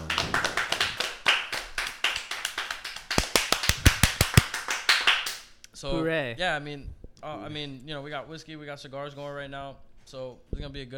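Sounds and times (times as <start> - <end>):
small audience applauding: 0.0 - 5.4
speech: 5.8 - 10.9.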